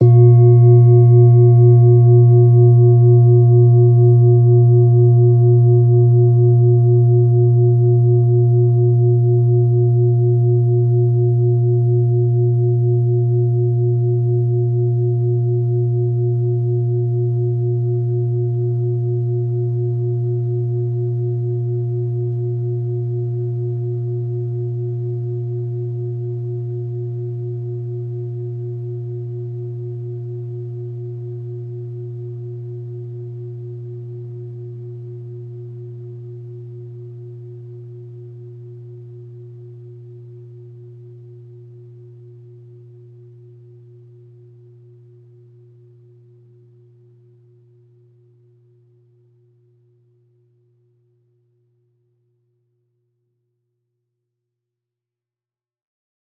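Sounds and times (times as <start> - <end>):
bowl played softly at A sharp 1: 0.0 - 50.6.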